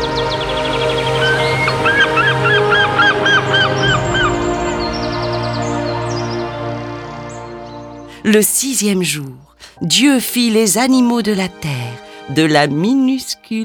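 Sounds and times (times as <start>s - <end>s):
birds calling in the sky with honking cries: 0.0s - 8.2s
speech: 8.3s - 13.6s.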